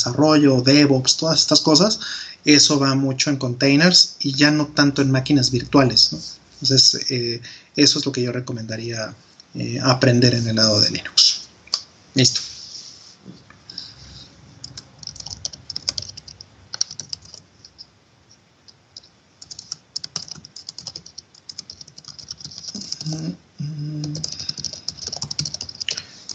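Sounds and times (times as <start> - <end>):
speech: 0.0 - 11.3, 12.2 - 12.5
rapid typing on a computer keyboard while answering in a chat: 14.6 - 17.9, 18.7 - 23.2, 24.0 - 26.3.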